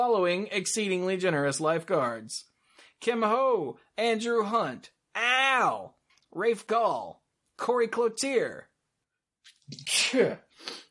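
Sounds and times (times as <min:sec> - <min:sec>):
speech: 0:00.0 - 0:08.7, 0:09.7 - 0:10.8
person sneezing: 0:09.7 - 0:10.8.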